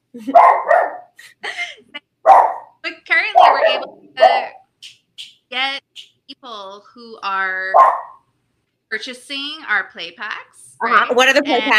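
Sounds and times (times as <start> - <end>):
speech: 0.1 - 1.4, 9.0 - 11.7
dog barking: 0.3 - 1.2, 2.2 - 4.6, 7.7 - 8.2.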